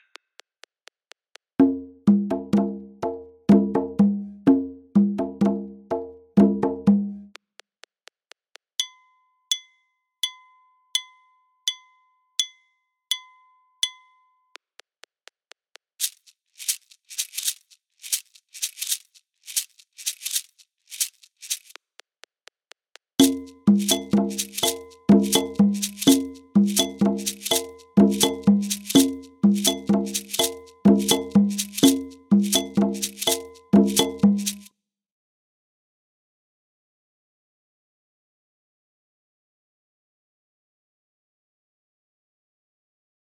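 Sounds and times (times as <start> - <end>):
Ekang music at 125 bpm from Africa: 1.6 - 7.3, 23.2 - 34.7.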